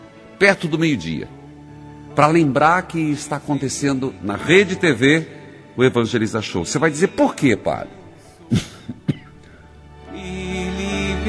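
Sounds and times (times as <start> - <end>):
speech: 0.4 - 1.4, 2.2 - 9.0
person coughing during a live TV program: 8.5 - 9.4.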